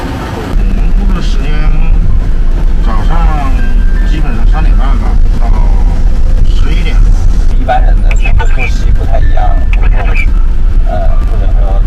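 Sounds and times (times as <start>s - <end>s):
faint voices: 0.0s - 11.8s
garbage truck engine droning heard from inside the cab: 0.0s - 11.8s.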